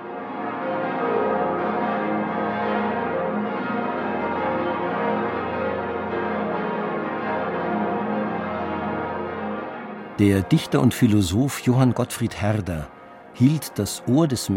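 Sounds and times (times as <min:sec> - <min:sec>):
several large church bells of Romanesque cathedrals ringing: 0:00.0 - 0:14.5
speech: 0:10.2 - 0:14.5.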